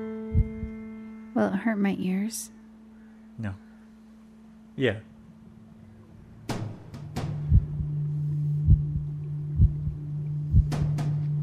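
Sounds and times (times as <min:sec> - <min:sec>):
constant low hum: 0:00.0 - 0:11.4
slow steady heartbeat: 0:00.3 - 0:00.8, 0:07.2 - 0:08.0, 0:08.6 - 0:11.4
speech: 0:01.4 - 0:02.6, 0:03.4 - 0:03.6, 0:04.8 - 0:05.1.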